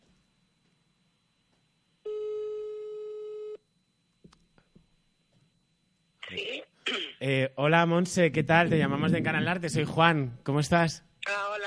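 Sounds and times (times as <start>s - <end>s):
telephone ringback tone while placing a phone call: 2.1s - 3.6s
speech: 7.2s - 11.1s.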